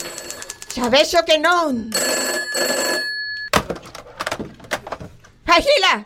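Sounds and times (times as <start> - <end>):
telephone bell ringing: 0.0 - 3.5
speech: 0.8 - 3.1, 5.6 - 6.0
telephone receiver picked up with a sharp clunk: 3.5 - 5.3
telephone handling knocks and rustles: 3.5 - 5.4.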